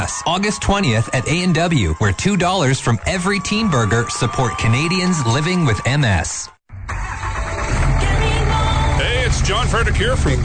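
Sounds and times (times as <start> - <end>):
speech: 0.2 - 7.0, 9.4 - 10.4
new Ram truck diesel engine starting up: 6.7 - 10.4.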